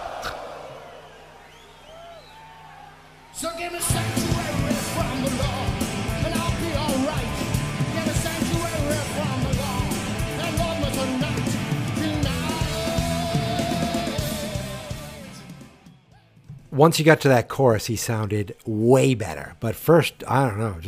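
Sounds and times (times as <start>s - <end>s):
concert crowd noise: 0.0s - 14.3s
speech: 3.6s - 4.3s, 16.8s - 20.8s
live band with distorted instruments playing at a concert in Chile: 3.9s - 15.9s.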